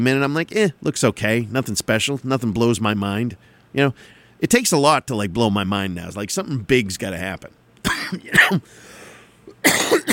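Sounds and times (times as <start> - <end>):
speech: 0.0 - 9.0, 9.6 - 10.1
harsh coughs: 7.8 - 8.8, 9.5 - 10.1.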